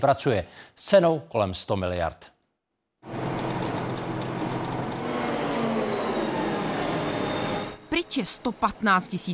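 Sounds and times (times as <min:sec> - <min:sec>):
speech: 0:00.0 - 0:02.3, 0:08.0 - 0:09.3
machinery noise in a metro tunnel under construction: 0:03.0 - 0:09.3.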